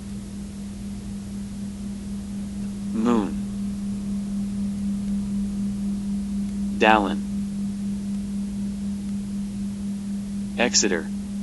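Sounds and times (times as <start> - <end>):
low electrical hum: 0.0 - 11.4
radio static: 6.8 - 7.2, 10.6 - 11.1
speech: 6.8 - 7.3, 10.6 - 11.1.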